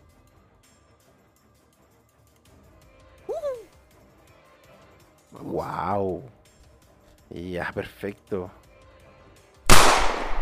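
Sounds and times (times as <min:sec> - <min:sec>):
speech: 0:05.4 - 0:06.4, 0:07.3 - 0:08.6
loud gunshot with tail: 0:09.7 - 0:10.4.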